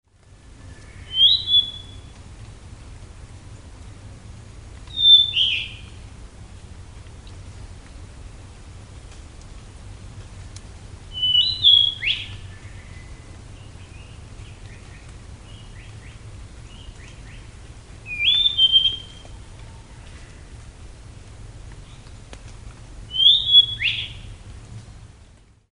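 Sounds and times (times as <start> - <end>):
ryukyukibitaki call: 0.6 - 2.1, 4.9 - 6.0, 11.1 - 13.2, 18.1 - 20.4, 23.1 - 24.4.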